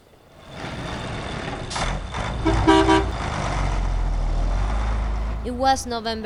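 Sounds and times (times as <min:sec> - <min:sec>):
heavy fuel truck engines rumbling and idling outside La Paz: 0:00.0 - 0:06.2
fuel truck horn toots: 0:02.2 - 0:03.4
speech: 0:05.5 - 0:06.2.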